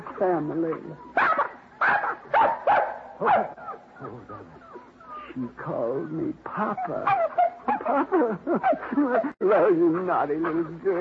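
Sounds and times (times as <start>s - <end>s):
puppies yapping and whimpering: 0.0s - 8.0s
speech: 0.2s - 1.3s, 3.2s - 4.6s, 5.3s - 10.9s
laughter: 7.7s - 10.0s.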